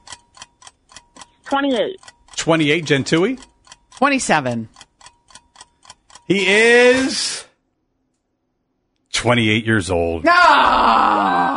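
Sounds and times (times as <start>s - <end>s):
quiz game countdown timer ticking: 0.0s - 7.1s
speech: 1.5s - 4.8s, 6.3s - 7.4s, 9.2s - 11.5s.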